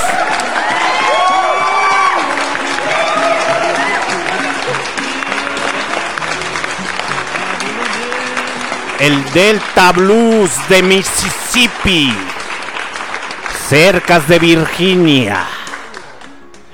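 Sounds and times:
excited voices shouting: 0:00.0 - 0:05.0
crowd cheering and whooping: 0:00.0 - 0:09.7
crowd clapping: 0:00.0 - 0:16.7
speech: 0:09.0 - 0:12.4, 0:13.7 - 0:15.6.

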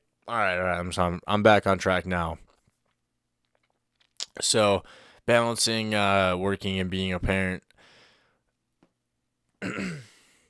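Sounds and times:
speech: 0:00.3 - 0:02.4, 0:04.4 - 0:07.7, 0:09.6 - 0:10.1
throat clearing: 0:09.6 - 0:10.3.

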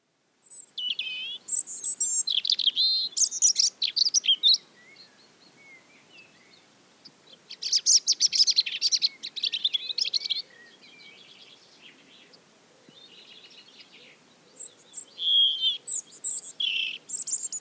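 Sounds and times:
steady hiss: 0:00.0 - 0:17.5
European robin singing: 0:00.4 - 0:17.5.

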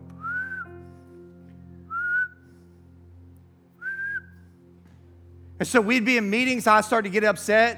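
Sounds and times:
low hum: 0:00.0 - 0:07.7
person whistling short notes: 0:00.2 - 0:00.7, 0:01.9 - 0:02.4, 0:03.8 - 0:04.2
speech: 0:05.6 - 0:07.7.

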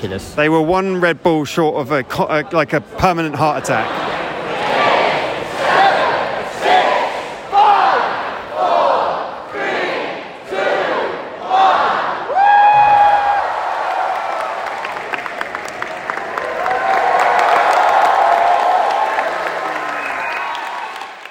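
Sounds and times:
speech: 0:00.0 - 0:04.8
concert crowd cheering: 0:03.6 - 0:21.2
concert crowd screaming: 0:12.3 - 0:21.2
shrill whistles: 0:19.9 - 0:20.7.

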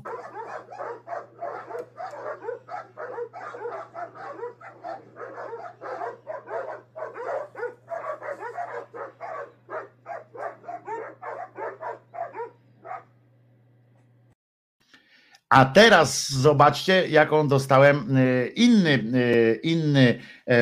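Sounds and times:
dogs barking and yipping: 0:00.0 - 0:13.2
speech: 0:15.5 - 0:20.6.

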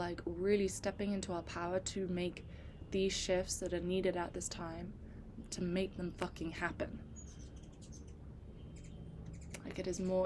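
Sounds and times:
speech: 0:00.0 - 0:07.1, 0:09.8 - 0:10.2
birds chirping as they fly overhead: 0:07.1 - 0:10.2.

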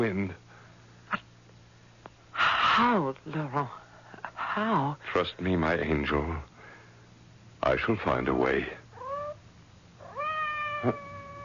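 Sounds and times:
speech: 0:00.0 - 0:00.4, 0:02.9 - 0:03.8, 0:04.6 - 0:06.5, 0:07.6 - 0:08.8, 0:10.8 - 0:11.0
cat meowing outside a door: 0:09.0 - 0:09.4, 0:10.0 - 0:11.4.

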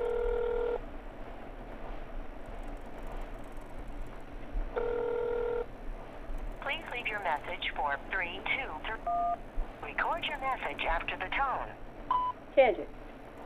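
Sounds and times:
telephone ringing in electronic bursts: 0:00.0 - 0:00.8, 0:04.8 - 0:05.7
low rumble: 0:00.0 - 0:13.4
speech: 0:07.2 - 0:11.8, 0:12.6 - 0:13.0.

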